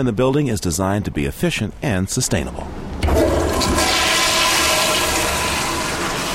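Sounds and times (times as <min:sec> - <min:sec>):
speech: 0:00.0 - 0:03.8
toilet flushing: 0:03.0 - 0:06.3.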